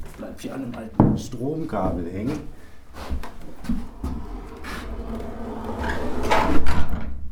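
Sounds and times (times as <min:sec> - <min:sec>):
speech: 0:00.4 - 0:02.6
old wooden door pushed open with dry knocks and scraping creaks: 0:02.9 - 0:07.3.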